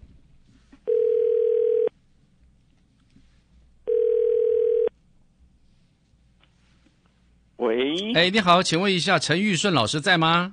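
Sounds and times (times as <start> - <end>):
telephone ringback tone as a call is placed to a radio interview guest: 0.9 - 1.9, 3.9 - 4.9
speech: 8.0 - 10.5.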